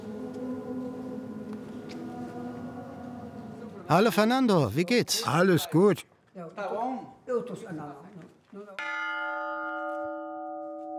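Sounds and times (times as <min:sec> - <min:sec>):
speech: 0:03.9 - 0:08.9
cracked church bell struck: 0:08.8 - 0:10.9.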